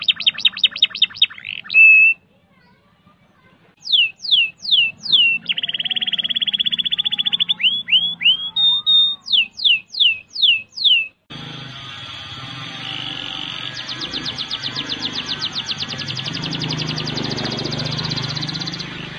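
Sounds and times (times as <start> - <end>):
canary singing: 0.0 - 2.3, 3.8 - 19.1.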